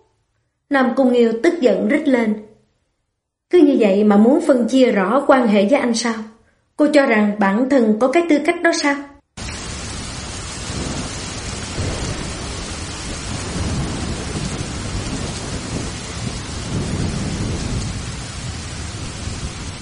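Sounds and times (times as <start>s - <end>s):
speech: 0.7s - 2.5s, 3.5s - 9.1s
heavy wind-driven rain on surfaces: 9.4s - 19.8s
low rumbles of thunder: 9.4s - 19.8s.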